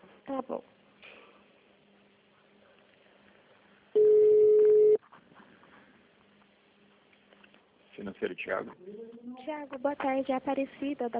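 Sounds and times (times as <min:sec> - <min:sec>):
speech: 0:00.3 - 0:00.8, 0:08.2 - 0:11.1
soft blips: 0:04.0 - 0:05.0
telephone tone during a call transfer: 0:04.0 - 0:05.0.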